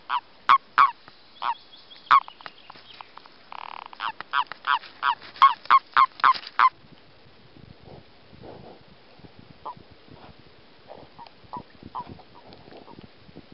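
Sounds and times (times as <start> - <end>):
Common toad mating calls during breeding: 0.0 - 6.8, 11.0 - 13.1.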